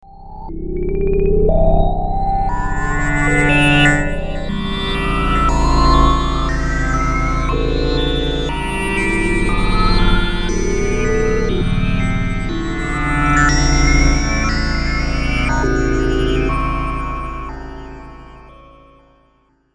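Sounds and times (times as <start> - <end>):
low-key ambient music: 0.1 - 19.2.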